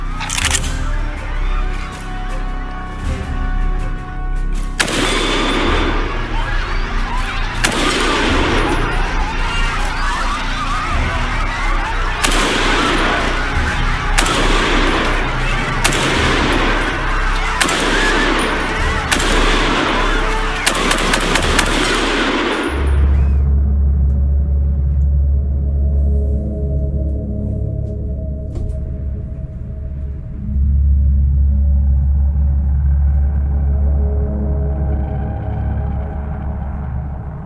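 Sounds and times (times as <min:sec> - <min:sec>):
low rumbling drone: 0:00.0 - 0:37.4
rapid gunfire fired into a crowd: 0:04.8 - 0:23.3
grenade explosion: 0:07.6 - 0:09.1, 0:12.2 - 0:23.4.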